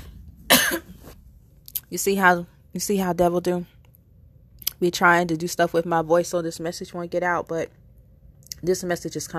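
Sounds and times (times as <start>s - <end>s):
single sharp cough at the microphone: 0.5s - 1.1s
speech: 1.9s - 3.8s, 4.8s - 7.8s, 8.6s - 9.3s.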